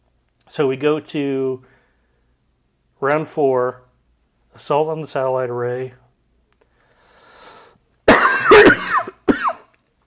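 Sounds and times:
speech: 0:00.5 - 0:01.7, 0:03.0 - 0:03.8, 0:04.6 - 0:06.0
person coughing harshly into a microphone from a bug in the throat: 0:08.1 - 0:09.7.

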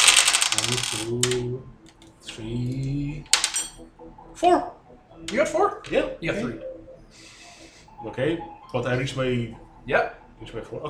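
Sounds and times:
dice rolled across a surface in a tabletop game: 0:00.0 - 0:01.4
speech: 0:00.6 - 0:03.4, 0:04.4 - 0:07.2, 0:08.0 - 0:10.8.

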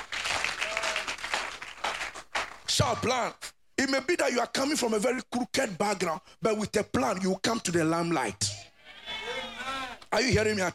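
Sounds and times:
congregation clapping hands at a church service: 0:00.0 - 0:02.8
speech: 0:02.7 - 0:08.6, 0:10.1 - 0:10.7.

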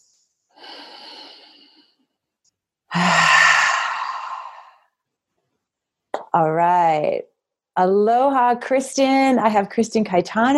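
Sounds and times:
group taking a deep breath together: 0:00.6 - 0:02.1, 0:02.9 - 0:04.8
speech: 0:06.3 - 0:10.5.

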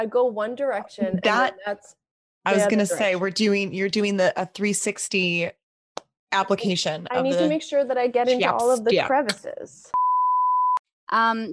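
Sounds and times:
speech: 0:00.0 - 0:05.6, 0:06.3 - 0:10.0, 0:11.1 - 0:11.5
electronic beep: 0:10.0 - 0:10.8.

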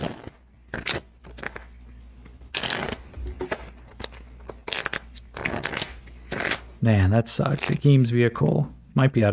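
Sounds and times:
deck of playing cards being reshuffled during a game: 0:00.0 - 0:01.8, 0:02.5 - 0:06.7
speech: 0:06.8 - 0:09.3.

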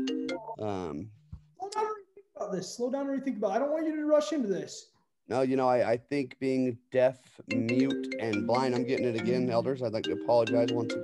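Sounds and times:
FaceTime incoming call ringtone: 0:00.0 - 0:00.6, 0:07.5 - 0:11.0
speech: 0:00.3 - 0:01.2, 0:02.5 - 0:11.0.

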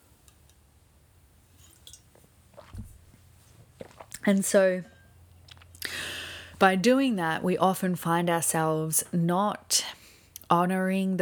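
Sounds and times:
person sipping water: 0:01.7 - 0:04.4, 0:05.3 - 0:06.5
swallow: 0:03.8 - 0:04.3
speech: 0:04.2 - 0:04.9, 0:06.6 - 0:11.2.

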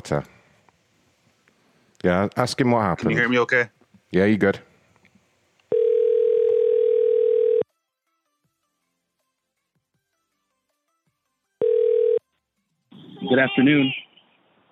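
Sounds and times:
speech: 0:00.0 - 0:00.4, 0:02.0 - 0:04.7, 0:13.3 - 0:14.0
telephone ringback tone while calling a company back: 0:05.7 - 0:07.6, 0:11.6 - 0:12.2.

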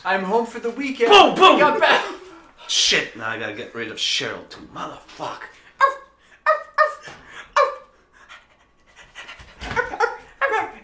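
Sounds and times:
speech: 0:00.0 - 0:06.0
dog panting: 0:08.1 - 0:10.4.

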